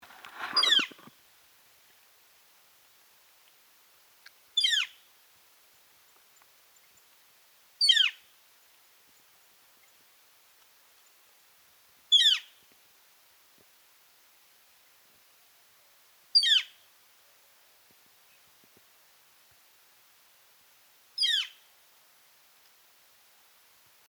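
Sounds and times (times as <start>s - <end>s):
Gilded Flicker Colaptes chrysoides calling: 0.4s - 1.1s, 4.6s - 4.9s, 12.2s - 12.5s, 16.4s - 16.7s, 21.2s - 21.6s.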